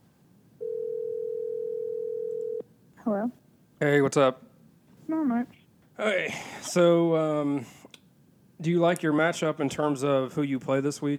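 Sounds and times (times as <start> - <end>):
telephone dial tone while placing a call: 0.6 - 2.6
speech: 3.1 - 4.4, 5.1 - 7.8, 8.6 - 11.1.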